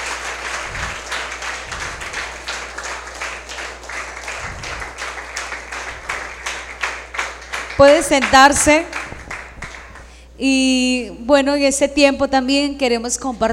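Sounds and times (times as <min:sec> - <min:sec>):
church congregation applauding during an evening service: 0:00.0 - 0:10.2
low hum: 0:00.0 - 0:10.5
speech: 0:07.8 - 0:09.0, 0:10.4 - 0:13.5.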